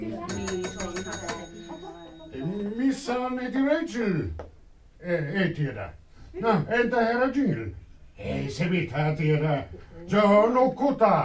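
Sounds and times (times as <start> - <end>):
hand bell rung to call for dinner: 0.2 - 3.3
speech: 3.1 - 11.2.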